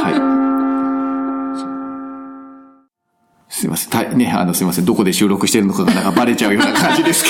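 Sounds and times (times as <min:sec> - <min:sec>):
chime ringing: 0:00.0 - 0:02.9
speech: 0:03.6 - 0:07.2
laughter: 0:05.7 - 0:07.2.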